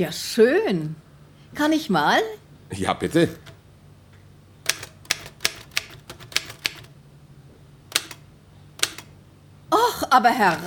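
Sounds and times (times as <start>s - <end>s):
speech: 0.0s - 3.5s, 10.1s - 10.6s
mechanical typewriter keys striking: 4.6s - 6.9s, 7.9s - 8.2s, 8.8s - 9.1s.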